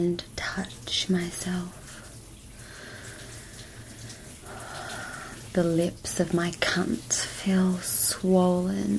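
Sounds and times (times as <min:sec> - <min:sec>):
speech: 0:00.0 - 0:01.8, 0:05.5 - 0:08.9
hot shower water spraying onto skin: 0:00.7 - 0:08.9.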